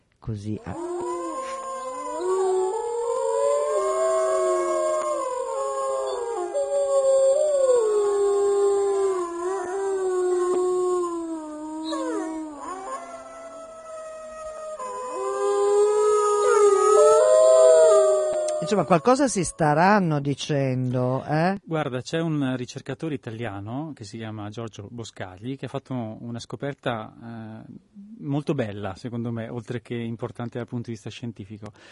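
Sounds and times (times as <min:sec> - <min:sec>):
speech: 0:00.2 - 0:01.6, 0:18.8 - 0:31.8
several wolves howling together at night: 0:00.6 - 0:19.6.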